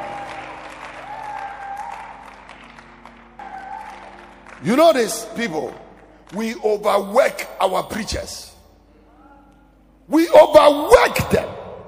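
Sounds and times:
audience clapping: 0.0 - 7.1
speech: 4.6 - 8.5, 10.1 - 11.5.

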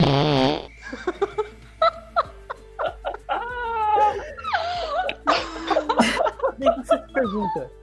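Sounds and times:
loud buzzy fart: 0.0 - 0.8
people giggling and laughing: 0.8 - 7.7
speech: 7.2 - 7.8.

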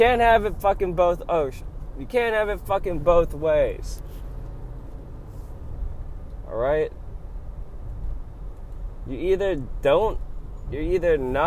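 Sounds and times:
speech: 0.0 - 4.2, 6.5 - 7.0, 9.0 - 11.4
steady low rumble of traffic: 0.0 - 11.4.

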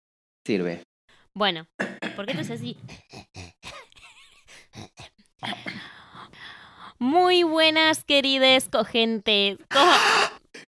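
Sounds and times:
speech: 0.5 - 3.5, 7.0 - 10.2
short grunting vocal sounds: 2.3 - 3.8, 4.8 - 5.9
loud breath rushing into the microphone: 5.8 - 7.0.

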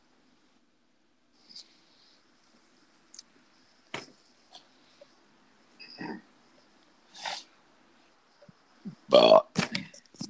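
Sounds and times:
loud burp: 9.1 - 9.6.

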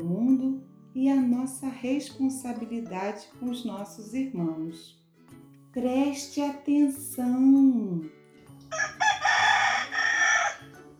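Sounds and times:
speech: 1.0 - 5.0, 5.8 - 9.0
rooster crowing: 8.7 - 10.8.

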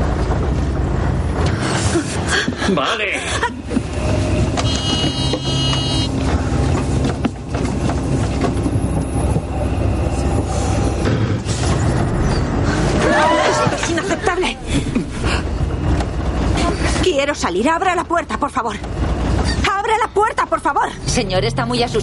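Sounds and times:
bus driving with a loud steady rumble: 0.0 - 22.0
speech: 2.7 - 3.8, 17.6 - 19.0, 20.2 - 22.0
thin high squeals: 4.6 - 6.2
laughter: 12.8 - 15.5.

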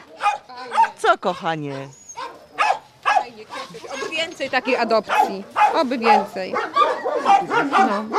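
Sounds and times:
dog barking: 0.0 - 8.1
speech: 1.2 - 2.0, 3.7 - 8.1.

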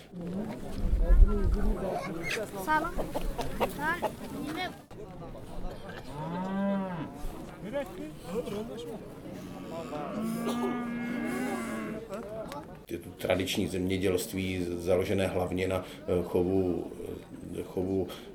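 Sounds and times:
indistinct voices and crowd noise at a market: 0.0 - 18.3
speech: 0.1 - 0.5, 1.3 - 11.5, 12.1 - 18.3
cattle mooing at a Saturday livestock market: 9.5 - 12.1.

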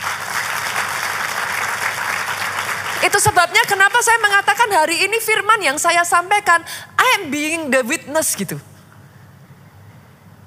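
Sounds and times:
crowd clapping for a pastor during a church service: 0.0 - 4.3
speech: 3.0 - 8.7.

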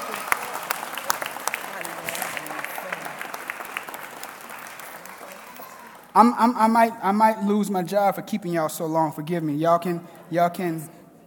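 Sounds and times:
audience applauding: 0.0 - 6.8
speech: 6.2 - 11.0.

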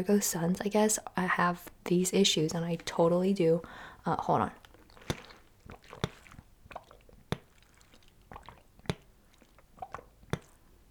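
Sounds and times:
speech: 0.0 - 4.6
person drinking water with wet gulps: 3.6 - 10.8
swallowing clicks: 4.6 - 10.8.

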